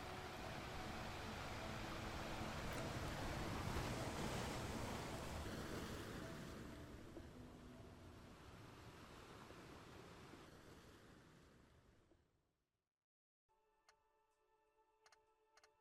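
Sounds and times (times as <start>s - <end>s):
waves washing ashore: 0.0s - 11.9s.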